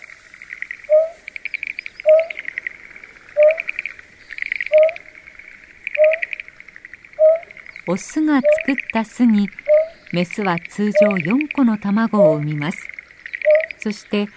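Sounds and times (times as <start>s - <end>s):
buzzy pulsed insect trill: 0.0s - 14.0s
greater painted-snipe repeating short soft low hoots in Tokyo suburbs, Japan: 0.8s - 10.2s, 13.4s - 13.8s
speech: 7.9s - 12.9s, 13.8s - 14.3s.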